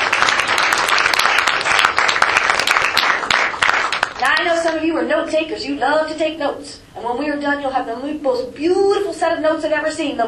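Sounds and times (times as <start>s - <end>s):
audience applauding: 0.0s - 4.7s
speech: 4.5s - 10.2s.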